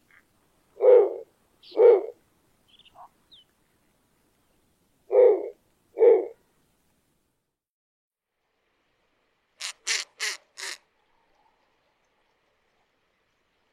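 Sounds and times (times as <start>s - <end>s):
captive snowy owl giving short low barking hoots at a zoo: 0.8s - 2.2s, 5.1s - 6.4s.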